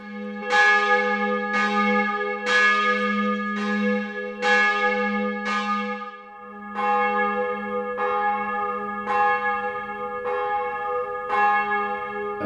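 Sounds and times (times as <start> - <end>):
single church bell tolling: 0.0 - 12.4.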